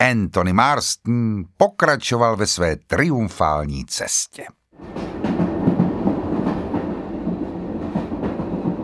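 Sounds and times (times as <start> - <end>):
speech: 0.0 - 5.3
passenger train rolling along the rails: 4.8 - 8.8.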